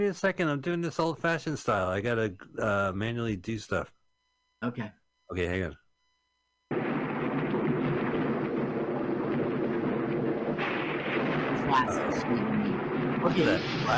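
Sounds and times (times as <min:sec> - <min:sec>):
speech: 0:00.0 - 0:04.0, 0:04.6 - 0:05.8, 0:11.8 - 0:12.5, 0:13.2 - 0:13.9
deep continuous rumble of thunder: 0:06.7 - 0:13.9
steady wash of rain: 0:06.7 - 0:13.9.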